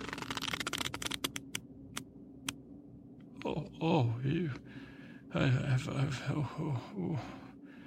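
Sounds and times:
plastic-coated playing cards being handled: 0.0 - 1.6
speech: 3.4 - 7.4.

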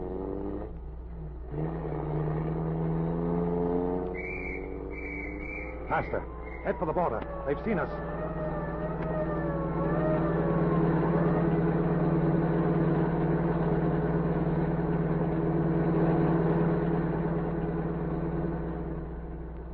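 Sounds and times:
car engine revving and accelerating: 0.0 - 19.7
road noise: 0.0 - 19.7
shrill police whistle: 4.1 - 12.2
faint wavering tone: 4.2 - 12.8
speech: 5.9 - 8.2.

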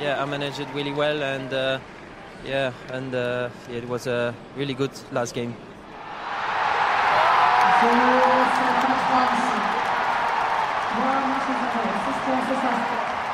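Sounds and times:
crowd cheering as a French team wins the Davis Cup tennis final: 0.0 - 1.9, 6.0 - 13.3
speech: 0.0 - 5.7, 7.8 - 8.2.

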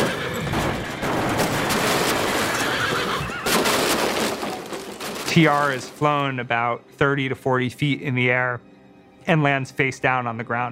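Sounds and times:
carriage horse whinnying in Pittsfield Massachusetts: 0.0 - 1.0, 2.0 - 4.9
carriage horse hooves clip-clopping in Pittsfield Massachusetts: 0.0 - 6.3
speech: 5.4 - 10.7.

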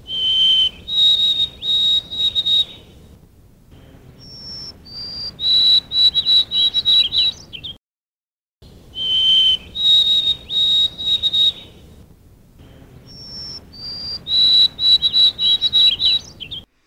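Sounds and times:
white-throated sparrow singing clear high whistled song: 0.0 - 3.0, 4.2 - 7.8, 8.9 - 11.9, 13.0 - 16.7.

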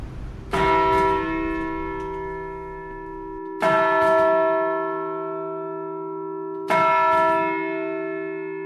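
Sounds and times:
two-ton modern-cast church bell ringing with deep hum: 0.0 - 8.6.

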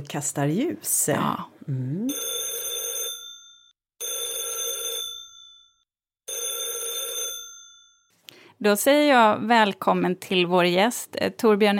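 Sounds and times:
speech: 0.0 - 2.3, 8.6 - 11.7
phone ringing tone of an outgoing call heard from the caller's end: 2.1 - 8.0.

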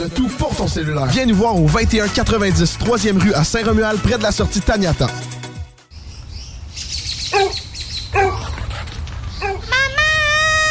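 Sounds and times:
speech: 0.0 - 5.3
dog barking: 7.3 - 8.6, 9.4 - 9.7
dog high-pitched whining: 7.3 - 8.8, 9.4 - 10.7.

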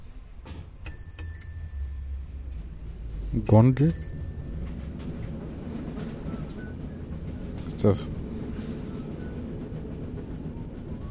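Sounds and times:
faint higher clatters: 0.4 - 7.8
steady low rumble: 1.3 - 11.0
speech: 3.4 - 4.0, 7.8 - 8.2.

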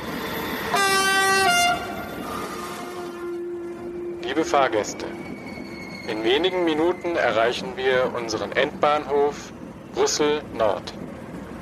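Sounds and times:
moving train rumbling on rails: 0.0 - 11.6
train horn blast: 0.7 - 4.3
speech: 4.4 - 5.3, 6.1 - 11.0.

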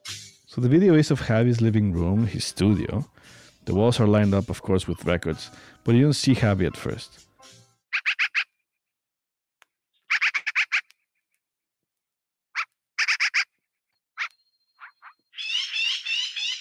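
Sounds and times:
speech: 0.5 - 7.6
American crow cawing: 8.0 - 8.5, 10.1 - 10.9, 12.6 - 13.5.

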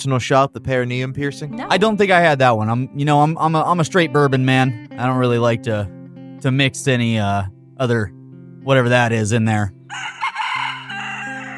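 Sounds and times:
speech: 0.0 - 10.2
rooster crowing: 9.9 - 11.5.

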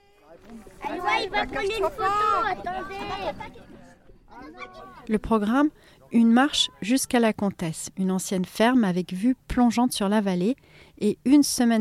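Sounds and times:
speech: 0.4 - 3.8, 4.4 - 11.8
excited children chattering and squealing while walking up into the mountains: 0.6 - 5.1.

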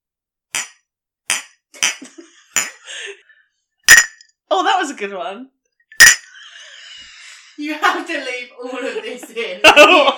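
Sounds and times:
two glasses clinking together: 3.9 - 4.3, 5.9 - 6.4
speech: 4.8 - 5.6, 7.6 - 10.1
laughter: 6.3 - 10.1.

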